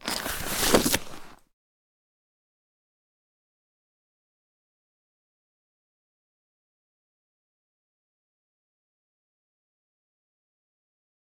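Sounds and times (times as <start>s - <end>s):
inventory close sound: 0.0s - 1.4s.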